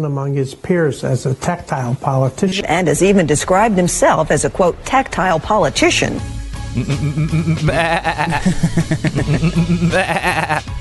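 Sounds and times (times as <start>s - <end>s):
speech: 0.0s - 10.7s
laughter: 6.8s - 10.7s
sheep bleating: 7.7s - 8.4s, 9.9s - 10.7s.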